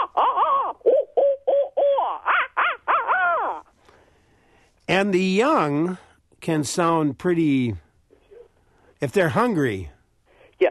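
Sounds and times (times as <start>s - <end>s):
owl hooting: 0.0s - 3.7s
speech: 4.9s - 7.8s, 9.0s - 10.0s.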